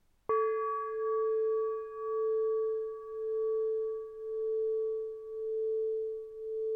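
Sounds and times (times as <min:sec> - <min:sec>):
bell: 0:00.3 - 0:06.6.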